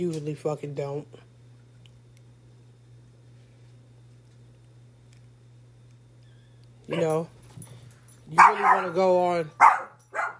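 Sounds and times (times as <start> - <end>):
speech: 0.0 - 1.3, 6.9 - 7.4, 8.3 - 10.3
dogs barking: 6.9 - 7.3, 8.3 - 10.3.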